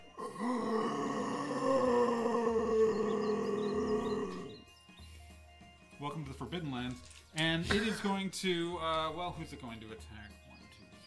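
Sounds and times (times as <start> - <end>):
monstrous creature roaring as it is stabbed: 0.1 - 4.5
speech: 6.2 - 10.4.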